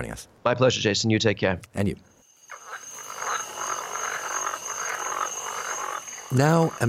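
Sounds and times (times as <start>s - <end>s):
speech: 0.0s - 2.6s, 6.3s - 6.8s
dense chorus of frogs croaking: 2.1s - 6.8s
thin steady high-pitched drone: 2.3s - 6.8s.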